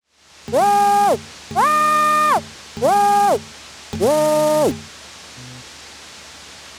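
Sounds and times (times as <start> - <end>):
printer doing media gap calibration: 0.5 - 4.9.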